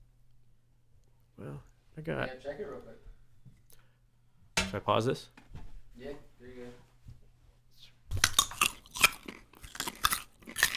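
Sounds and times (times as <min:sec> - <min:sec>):
speech: 0:01.5 - 0:03.6, 0:04.7 - 0:06.8
chewing a crunchy raw organic carrot: 0:08.1 - 0:10.7.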